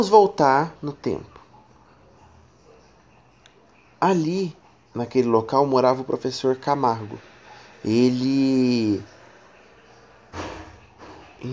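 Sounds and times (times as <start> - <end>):
speech: 0.0 - 1.3, 4.0 - 9.2, 11.4 - 11.5
hiss: 0.0 - 11.5
door slamming shut: 10.3 - 11.3.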